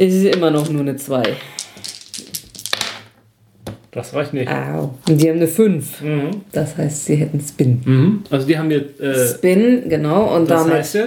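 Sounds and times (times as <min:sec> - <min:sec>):
speech: 0:00.0 - 0:01.6, 0:03.9 - 0:11.0
dice rolled in a game rattling across a hard surface: 0:00.3 - 0:03.2.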